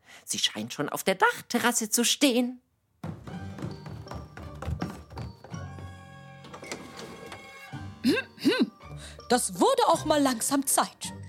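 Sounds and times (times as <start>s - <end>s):
speech: 0.3s - 2.7s, 8.1s - 11.2s
door creaking: 3.6s - 7.8s
door opening with mechanical clunks and taps: 6.4s - 7.7s.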